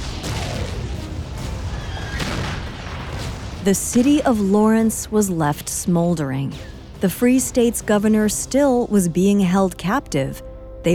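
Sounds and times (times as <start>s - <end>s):
heavy cannon blasts bombarding a hotel: 0.0s - 4.4s
speech: 3.6s - 10.9s.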